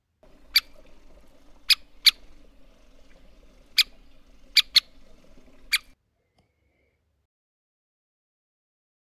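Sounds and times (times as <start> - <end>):
American three-toed woodpecker pik calls: 0.2 - 6.0
faint low hum: 0.2 - 7.0.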